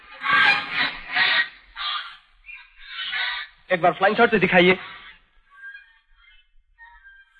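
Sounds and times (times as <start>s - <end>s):
bird honking in flight: 0.0s - 3.6s, 4.8s - 6.4s
speech: 3.7s - 5.0s.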